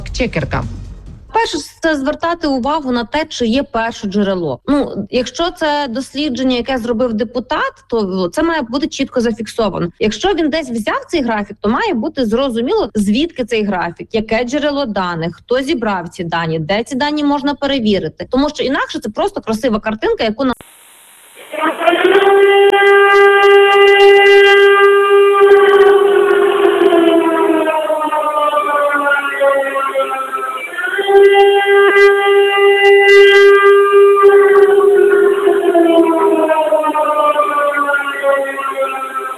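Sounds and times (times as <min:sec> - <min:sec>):
speech: 0:00.2 - 0:00.8, 0:01.4 - 0:20.8, 0:21.6 - 0:24.6
civil defense air raid siren wailing: 0:20.6 - 0:39.3.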